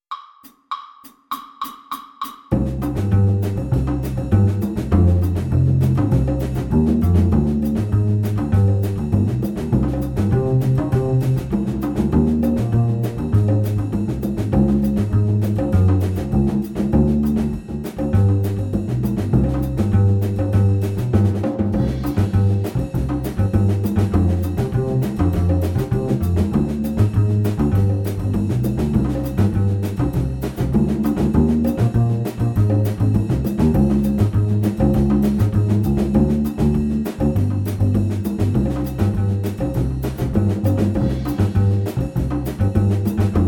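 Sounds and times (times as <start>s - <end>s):
jazz samba piano play-along: 2.5s - 43.4s.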